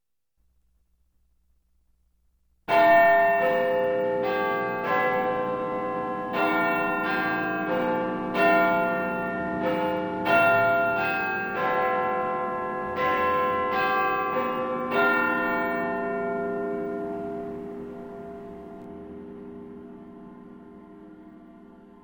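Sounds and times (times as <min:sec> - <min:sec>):
Big Ben clock bell chiming: 0:02.7 - 0:18.7.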